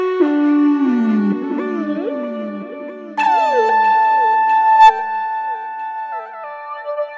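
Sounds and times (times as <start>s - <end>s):
Roland V-Synth factory patch: 0.2s - 7.1s.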